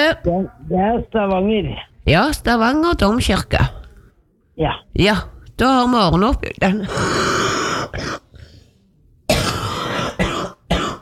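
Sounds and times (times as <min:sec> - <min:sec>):
speech: 0:00.1 - 0:03.8, 0:04.6 - 0:08.2
person coughing harshly: 0:09.3 - 0:10.9
softer throat-clearing rasp: 0:09.3 - 0:10.9.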